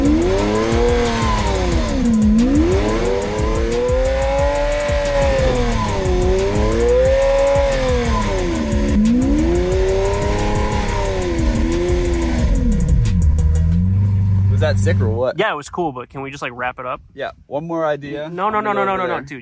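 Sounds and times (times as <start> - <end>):
Lamborghini sports car engine revving hard while drifting: 0.0 - 15.2
speech: 14.9 - 19.3.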